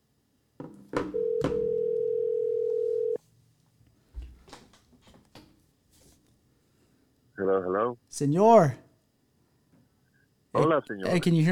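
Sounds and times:
telephone dial tone while placing a call: 1.0 - 3.2
speech: 8.2 - 8.8, 10.6 - 11.5.

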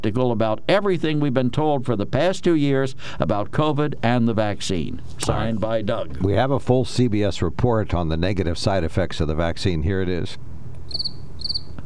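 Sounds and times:
speech: 0.0 - 11.1
cricket chirps: 10.9 - 11.8.

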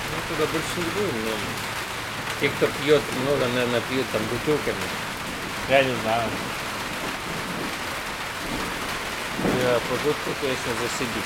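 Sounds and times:
low rumbling undertone: 0.0 - 11.2
steady dense rain hissing: 0.0 - 11.2
speech: 0.3 - 1.8, 2.4 - 5.0, 5.7 - 6.5, 9.6 - 11.2.

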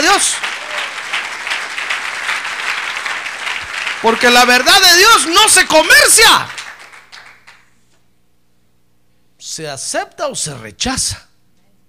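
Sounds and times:
church audience applause: 0.0 - 7.7
speech: 0.2 - 0.6, 4.0 - 6.6, 9.6 - 11.3.

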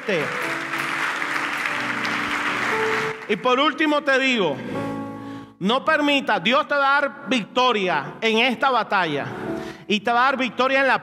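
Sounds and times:
audience applauding: 0.0 - 3.9
held keyboard or organ chords: 0.0 - 5.6
speech: 0.1 - 0.5, 3.3 - 4.9, 5.6 - 11.0.

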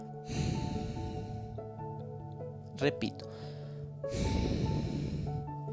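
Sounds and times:
slow exhale through the nose during a deep-breathing exercise: 0.2 - 1.6, 3.3 - 5.6
speech: 2.8 - 4.5.

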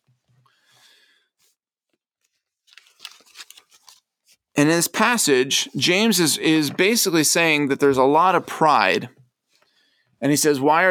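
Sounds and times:
paper Bible pages being handled and flipped: 1.4 - 4.5
speech: 4.6 - 9.2, 10.2 - 10.8.

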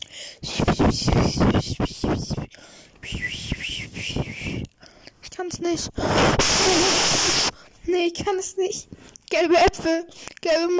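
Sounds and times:
speech: 0.9 - 3.4, 5.4 - 6.9, 8.0 - 10.7
person attempting to whistle: 3.0 - 4.7.

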